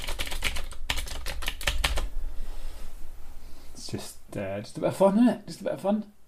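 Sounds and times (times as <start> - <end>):
typing on a computer keyboard: 0.0 - 2.1
speech: 3.9 - 6.2.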